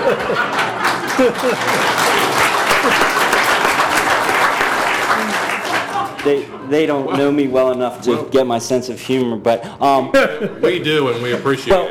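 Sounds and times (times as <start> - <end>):
laughter: 0.0 - 3.7, 9.9 - 11.8
large audience applauding: 0.0 - 6.5
speech: 0.1 - 0.6, 1.2 - 2.0, 6.2 - 11.8.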